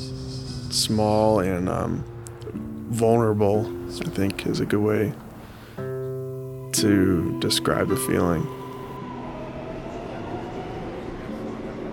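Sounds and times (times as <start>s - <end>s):
speech: 0.7s - 5.2s, 6.8s - 8.6s
subway train running along the rails: 8.6s - 11.9s.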